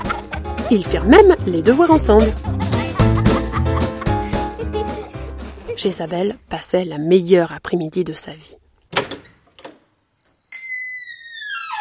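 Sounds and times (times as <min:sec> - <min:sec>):
laughter: 0:00.0 - 0:00.6, 0:02.1 - 0:05.8
speech: 0:00.7 - 0:02.6, 0:05.8 - 0:08.6
office door latch and handle clunks: 0:08.9 - 0:09.8
high creaking squeal of office door hinges: 0:08.9 - 0:11.7.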